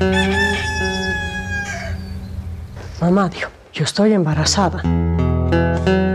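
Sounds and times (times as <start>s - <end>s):
rooster crowing: 0.0s - 2.7s
speech: 3.0s - 6.0s.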